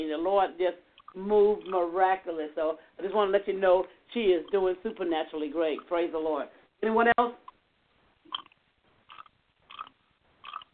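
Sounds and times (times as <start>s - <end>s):
speech: 0.0s - 7.4s
chewing or scraping over a phone line: 7.5s - 10.7s.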